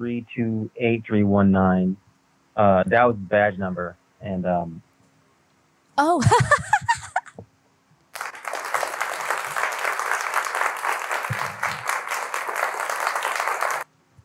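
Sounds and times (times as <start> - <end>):
speech: 0.0 - 2.0, 2.6 - 4.9, 6.0 - 6.6
laughter: 6.0 - 7.3
audience clapping: 8.1 - 13.9.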